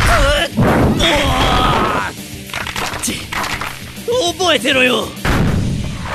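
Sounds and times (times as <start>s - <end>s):
strained vocal cries: 0.0s - 2.2s
speech: 4.4s - 5.2s
heavy punch impacts: 5.2s - 6.0s.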